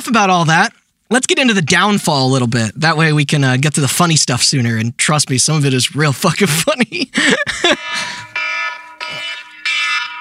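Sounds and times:
speech: 0.1s - 8.4s
laughter: 6.3s - 8.3s
phone alarm buzzing tone bursts: 7.8s - 10.1s.

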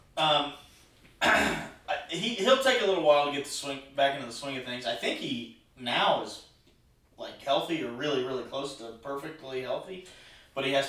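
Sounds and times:
speech: 0.2s - 0.6s, 2.1s - 6.5s, 7.2s - 10.8s
person clearing throat: 1.2s - 1.8s
person coughing: 1.2s - 1.8s.

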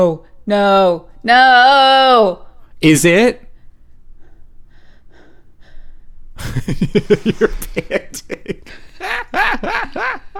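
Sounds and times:
speech: 0.0s - 3.4s, 6.4s - 10.3s
person panting: 3.6s - 7.9s
laughter: 6.4s - 10.3s.

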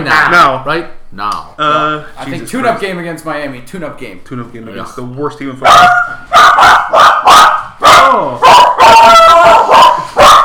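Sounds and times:
speech: 0.0s - 10.0s
dog barking loudly: 5.6s - 10.4s.

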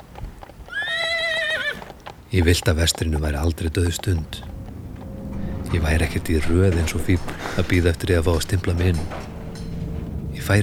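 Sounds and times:
horse hooves clip-clopping: 0.0s - 10.6s
horse whinnying: 0.4s - 2.2s
speech: 2.3s - 4.6s, 5.7s - 9.3s, 10.4s - 10.6s.

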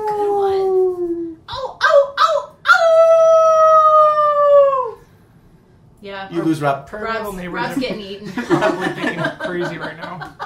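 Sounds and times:
person imitating a wolf howl: 0.0s - 5.0s
speech: 6.4s - 10.4s
laughter: 7.6s - 10.4s.

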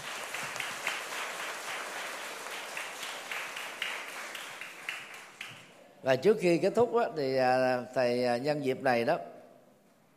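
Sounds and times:
children in a Buddhist class applauding: 0.0s - 5.8s
speech: 6.0s - 9.3s.

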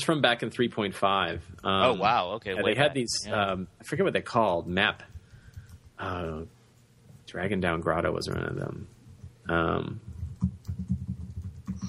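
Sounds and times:
speech: 0.0s - 5.1s, 6.0s - 6.6s, 7.3s - 8.9s, 9.5s - 10.6s
typing on a computer keyboard: 5.1s - 6.0s, 10.0s - 11.8s.

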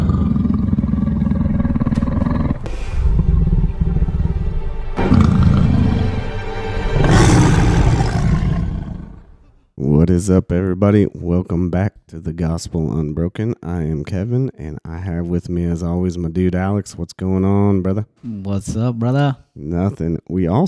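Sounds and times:
lion roaring: 0.0s - 9.5s
speech: 10.2s - 20.6s.

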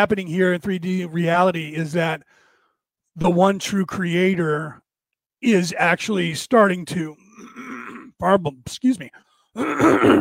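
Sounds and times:
speech: 0.0s - 2.4s, 3.2s - 4.8s, 5.4s - 7.6s, 8.2s - 10.1s
person clearing throat of phlegm: 9.6s - 10.1s.

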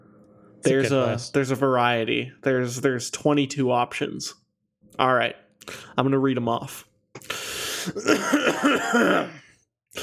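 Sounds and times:
speech: 0.6s - 9.4s
person coughing: 7.8s - 10.0s.

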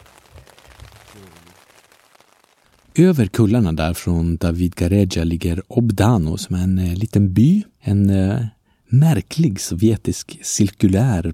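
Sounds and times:
steady rain pattering on a waterproof two-person tent: 0.0s - 3.4s
low voice murmuring faintly: 1.1s - 1.5s
speech: 1.2s - 1.5s, 3.0s - 11.3s.

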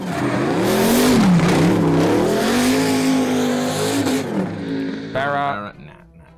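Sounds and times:
turbocharged engine with a screamer pipe revving: 0.0s - 5.7s.

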